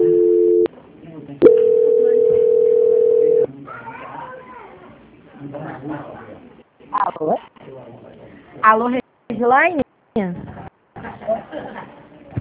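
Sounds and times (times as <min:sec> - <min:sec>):
telephone tone while a call is being transferred: 0:00.0 - 0:00.7, 0:01.4 - 0:03.5
speech: 0:07.2 - 0:07.5, 0:08.6 - 0:09.8.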